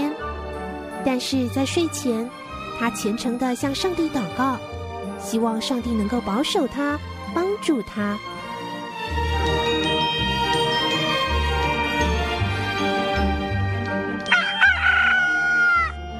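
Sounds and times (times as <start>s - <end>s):
gentle music: 0.0s - 16.1s
speech: 1.0s - 8.3s
rooster crowing: 14.3s - 16.1s.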